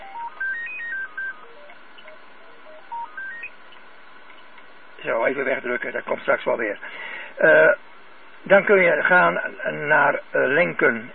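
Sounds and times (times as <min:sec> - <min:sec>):
telephone electronic ringtone of short beeping tones: 0:00.0 - 0:03.5
speech: 0:05.0 - 0:07.8, 0:08.4 - 0:11.1.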